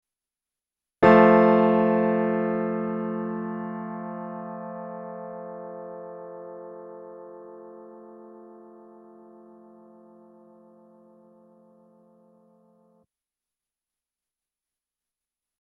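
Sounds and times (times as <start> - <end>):
piano in a binaural resonance test: 1.0 - 13.0.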